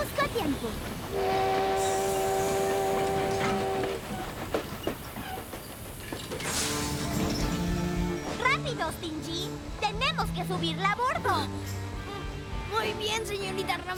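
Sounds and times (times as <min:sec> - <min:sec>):
rail cars rumbling and clattering: 0:00.0 - 0:13.9
speech: 0:00.4 - 0:01.9, 0:08.9 - 0:11.8, 0:12.8 - 0:13.9
train horn sounding a loud steady chord: 0:01.1 - 0:04.2.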